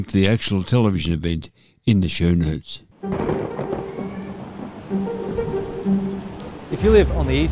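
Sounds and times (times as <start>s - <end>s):
speech: 0.0s - 3.4s, 6.8s - 7.5s
steady rain falling: 3.0s - 7.5s.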